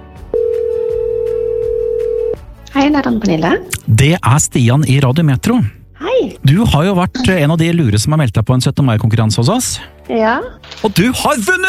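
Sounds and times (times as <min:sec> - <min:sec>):
steady telephone tone on an outgoing call to a contest entrant: 0:00.4 - 0:02.4
speech: 0:02.8 - 0:11.6.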